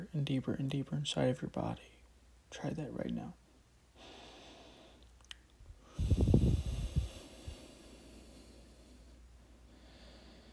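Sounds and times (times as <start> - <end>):
speech: 0.1 - 3.4
deep breath during a calming relaxation exercise: 3.9 - 10.5.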